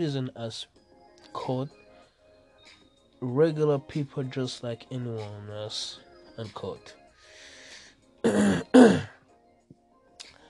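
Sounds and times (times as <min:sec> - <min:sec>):
speech: 0:00.0 - 0:01.8, 0:03.2 - 0:07.0, 0:08.2 - 0:09.1
breath: 0:07.2 - 0:08.1
throat clearing and coughing: 0:08.2 - 0:09.2.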